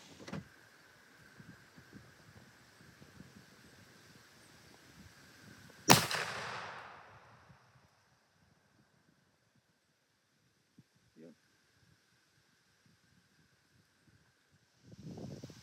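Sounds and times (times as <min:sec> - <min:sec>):
faint outdoor wind: 0:00.0 - 0:15.6
rifle shot fired while sighting in the rifle: 0:05.9 - 0:07.3.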